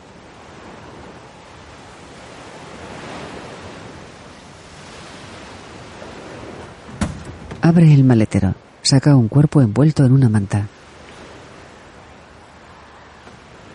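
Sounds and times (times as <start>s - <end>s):
ocean surf washing onto the shore beside a coastal road: 0.0s - 13.7s
sharp knock: 7.0s - 7.6s
speech: 7.6s - 10.8s.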